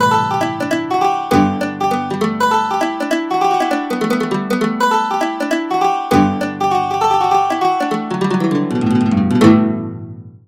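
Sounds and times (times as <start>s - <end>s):
low highland octave mandolin: 0.0s - 10.4s.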